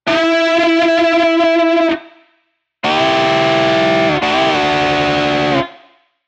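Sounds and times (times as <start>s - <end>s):
guitar: 0.0s - 2.2s, 2.8s - 5.9s.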